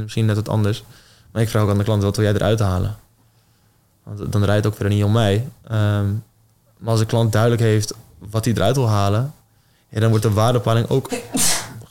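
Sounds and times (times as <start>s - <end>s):
speech: 0.0s - 3.0s, 4.0s - 11.5s
sneeze: 11.1s - 11.8s.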